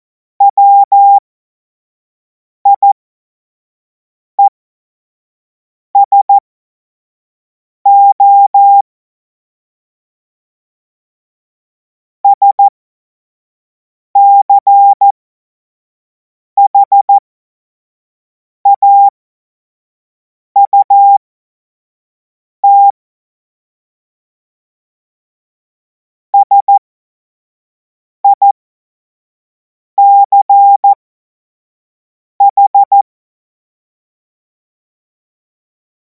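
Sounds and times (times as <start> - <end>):
morse code beeps: 0.4 - 1.2, 2.7 - 3.0, 6.0 - 6.3, 7.9 - 8.8, 12.2 - 12.7, 14.2 - 15.1, 16.7 - 17.1, 18.7 - 19.1, 20.6 - 21.2, 22.6 - 22.9, 26.4 - 26.8, 28.2 - 28.5, 30.0 - 31.0, 32.4 - 33.0.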